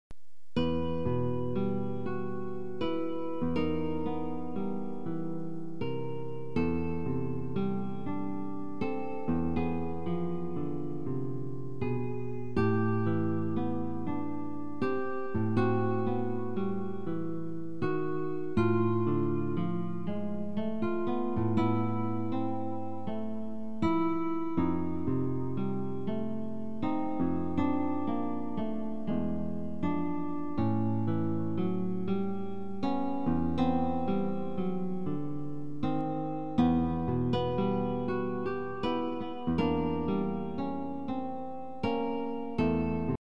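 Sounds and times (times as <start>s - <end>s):
guitar suite: 0.6s - 43.2s.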